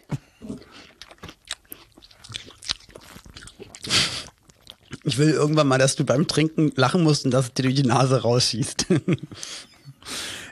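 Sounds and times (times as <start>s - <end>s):
person eating melon with bites, crunches and wet squishes: 0.0s - 6.5s
speech: 5.1s - 9.7s.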